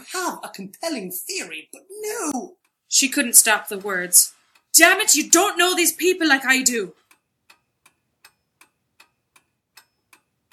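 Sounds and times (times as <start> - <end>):
mechanical clock in an office ticking: 0.0 - 10.5
speech: 0.2 - 7.0.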